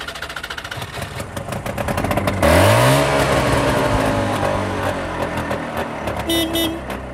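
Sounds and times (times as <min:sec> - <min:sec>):
car engine revving: 0:01.3 - 0:07.0
car horn honk: 0:06.2 - 0:07.0.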